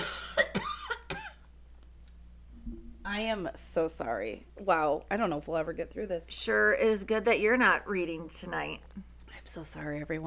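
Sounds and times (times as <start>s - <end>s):
raspy hoarse coughing fit: 0.0s - 1.4s
speech: 3.2s - 10.2s.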